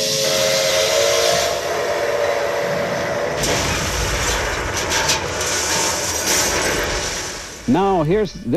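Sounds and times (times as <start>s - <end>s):
recreated steam locomotive crash hissing steam: 0.0s - 7.9s
heavy burst of recreated steam locomotives crashing head-on: 3.2s - 8.0s
speech: 7.7s - 8.5s.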